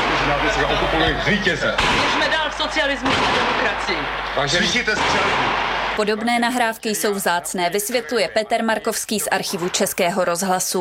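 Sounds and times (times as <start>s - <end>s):
voices talking and shouting in a crowded scene: 0.0s - 10.7s
speech: 0.3s - 10.7s
gunshot cracks in archival radio recording: 1.8s - 6.1s.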